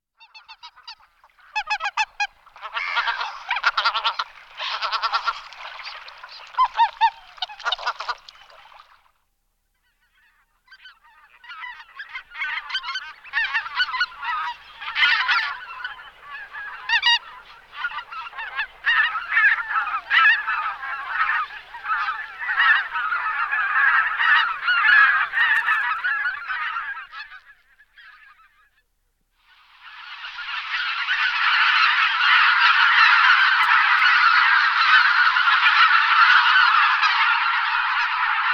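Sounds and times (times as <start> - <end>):
Anser albifrons calling: 0.2 - 8.8, 9.8 - 28.5, 29.9 - 38.5.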